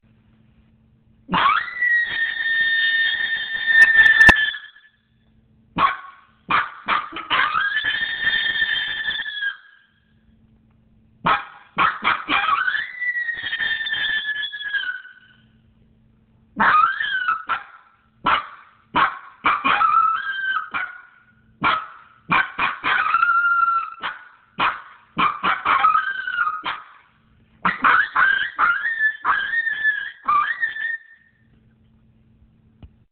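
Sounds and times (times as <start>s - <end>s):
howler: 1.3s - 4.8s, 5.8s - 9.8s, 11.3s - 15.4s, 16.6s - 27.1s, 27.7s - 31.3s.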